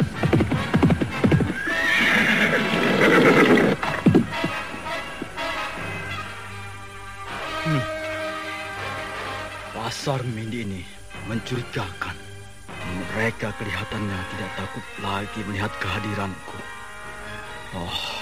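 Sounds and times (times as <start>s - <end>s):
horse hooves clip-clopping: 0.0s - 5.6s
white horse neighing as it arrives: 1.2s - 5.2s
speech: 10.1s - 12.2s, 13.2s - 16.8s, 17.7s - 18.1s.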